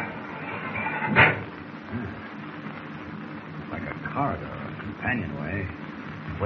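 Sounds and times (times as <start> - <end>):
steady hum: 0.0 - 6.4
heavy steel door opening: 0.4 - 1.5
speech: 4.2 - 5.8.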